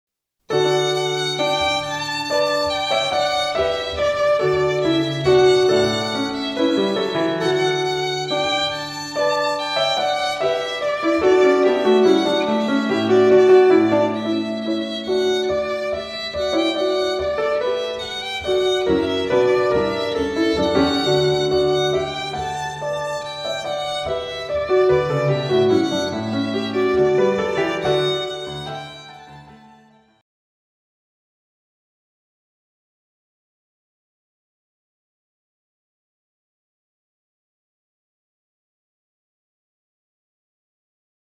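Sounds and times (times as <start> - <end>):
piano melody: 0.5 - 30.0.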